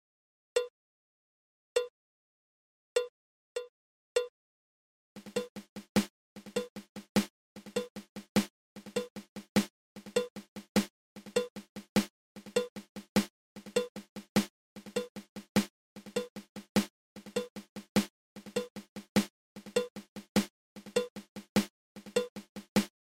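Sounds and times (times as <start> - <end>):
single ratamacue drum rudiment: 5.2 - 22.9.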